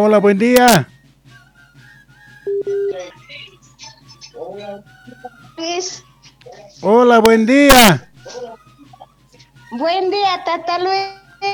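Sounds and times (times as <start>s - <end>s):
speech: 0.0s - 0.9s, 4.4s - 8.7s, 9.7s - 11.5s
short steady telephone tones as a call connects: 2.5s - 3.0s.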